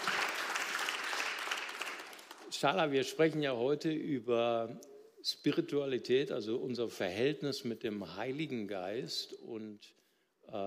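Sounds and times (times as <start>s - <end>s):
audience applause: 0.0s - 2.6s
speech: 2.5s - 10.6s.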